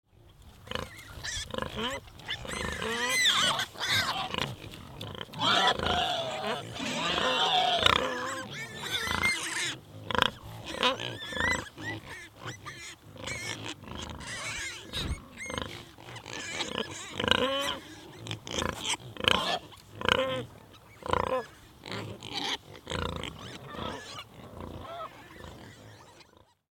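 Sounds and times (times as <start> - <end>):
wild boar herd at a feeding site: 0.1 - 26.6.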